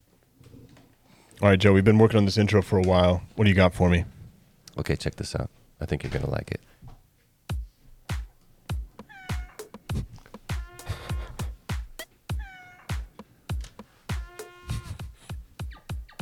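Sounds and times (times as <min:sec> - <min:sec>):
speech: 0:01.4 - 0:04.2, 0:04.8 - 0:06.7
steady rhythmic thumping pulse: 0:07.5 - 0:16.2
cat meowing: 0:09.0 - 0:09.7, 0:10.6 - 0:11.4, 0:12.3 - 0:13.1
brassy trumpet: 0:10.5 - 0:11.5, 0:14.1 - 0:15.2
high sliding whistle of an elk bugle: 0:10.5 - 0:11.5, 0:14.2 - 0:15.1.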